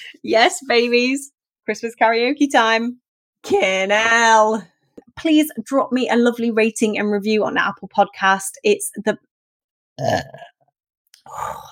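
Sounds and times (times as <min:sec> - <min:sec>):
speech: 0:00.0 - 0:09.3, 0:10.0 - 0:10.5, 0:11.3 - 0:11.7
loud low throaty burp: 0:10.0 - 0:11.7
drawn-out vocal sound: 0:11.2 - 0:11.7.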